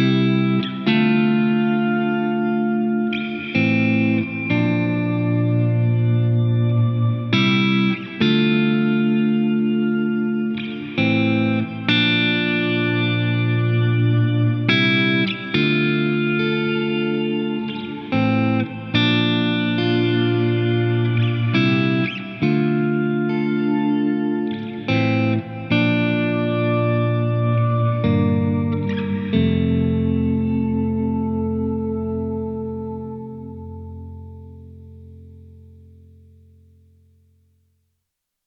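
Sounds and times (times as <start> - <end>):
ambient swelling long chords: 0.1 - 36.4.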